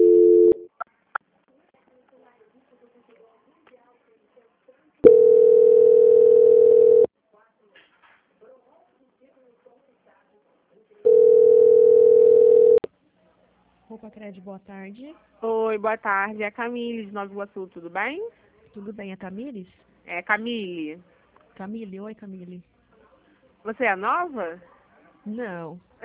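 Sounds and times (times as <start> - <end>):
telephone tone during a call transfer: 0.0 - 0.7, 5.0 - 7.1, 11.1 - 12.9
speech: 14.3 - 22.7, 23.6 - 26.0.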